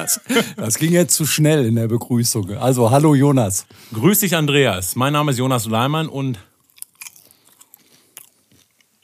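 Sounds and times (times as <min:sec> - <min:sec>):
laughter: 0:00.0 - 0:00.9
speech: 0:00.0 - 0:06.5
popcorn being chewed in a mouth: 0:06.5 - 0:09.0.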